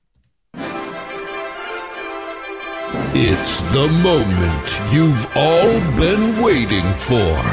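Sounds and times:
bell ringing: 0:00.6 - 0:05.8
speech: 0:03.2 - 0:07.5.

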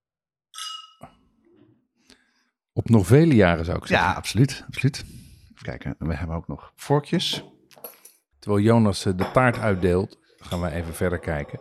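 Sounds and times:
wine glasses clinking in a toast: 0:00.6 - 0:01.2, 0:09.2 - 0:11.6
speech: 0:02.8 - 0:11.6.

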